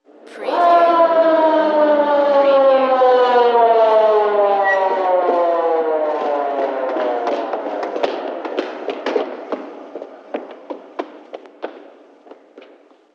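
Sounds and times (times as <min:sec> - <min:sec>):
police siren: 0:00.3 - 0:09.4.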